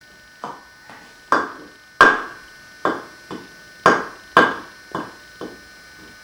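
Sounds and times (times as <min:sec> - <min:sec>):
blue block hitting a wall: 0:01.3 - 0:05.6.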